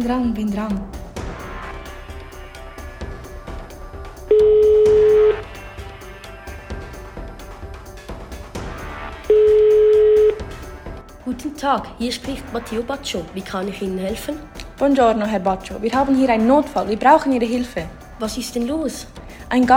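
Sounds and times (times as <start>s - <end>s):
speech: 0.0s - 1.0s, 11.3s - 19.7s
soft busy music: 0.0s - 19.7s
phone line ringback tones: 4.3s - 5.5s, 9.3s - 10.4s.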